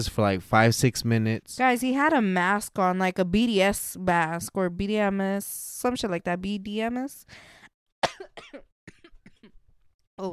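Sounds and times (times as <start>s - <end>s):
speech: 0.0s - 8.7s, 10.2s - 10.3s
harsh raspy coughing fit: 8.0s - 9.6s.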